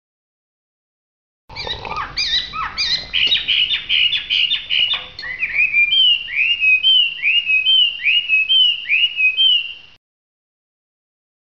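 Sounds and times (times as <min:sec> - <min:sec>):
Hwamei whistling a repeated upslurred note: 0:01.5 - 0:10.0.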